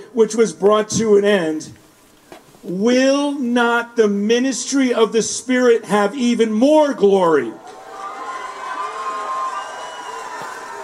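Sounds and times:
speech: 0.1 - 1.8, 2.6 - 7.8
large crowd cheering and shouting: 7.5 - 10.8.

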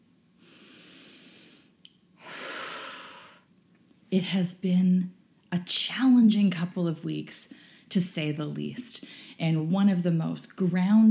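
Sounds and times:
deep breath during a guided calming exercise: 0.4 - 3.5, 9.0 - 9.4
speech: 4.1 - 11.0.

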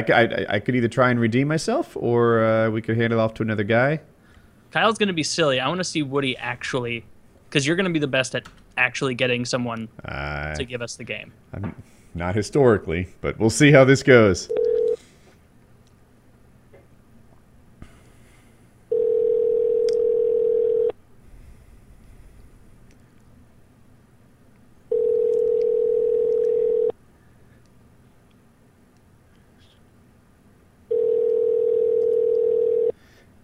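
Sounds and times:
speech: 0.0 - 4.1, 4.7 - 14.7
phone call ringing through the earpiece: 14.5 - 15.0, 18.9 - 21.0, 24.9 - 27.0, 30.9 - 33.0.

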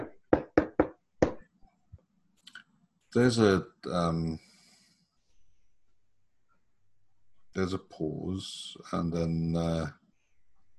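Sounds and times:
axe knocking on a painted door: 0.0 - 1.4
speech: 3.1 - 4.5, 7.6 - 10.0.

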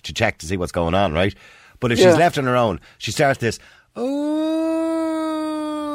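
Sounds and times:
speech: 0.0 - 4.6
person imitating a dog's howl: 4.0 - 5.9.

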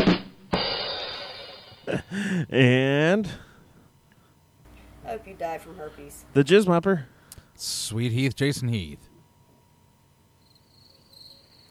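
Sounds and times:
speech: 2.0 - 3.4, 5.1 - 9.1
cricket chirping: 10.3 - 11.6.

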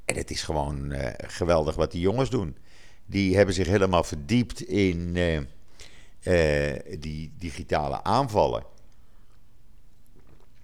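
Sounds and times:
low hum: 0.0 - 10.6
speech: 0.1 - 8.7
soft wet mouth clicks: 8.7 - 10.6
quiet sip of water: 8.8 - 10.6.

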